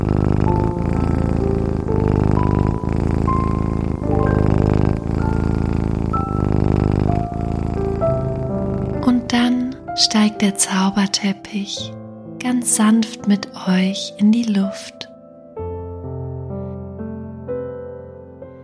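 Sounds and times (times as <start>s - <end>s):
small cat purring on a person's belly: 0.0s - 11.7s
soft music of sustained shifting tones: 0.0s - 18.6s
speech: 10.4s - 14.9s.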